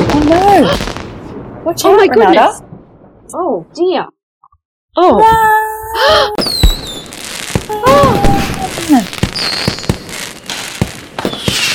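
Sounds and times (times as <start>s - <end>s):
fireworks bangs and crackles: 0.0s - 3.3s, 6.3s - 11.7s
speech: 1.6s - 2.6s, 3.3s - 4.2s, 5.0s - 6.6s
shrill whistling firework rockets: 6.4s - 11.7s.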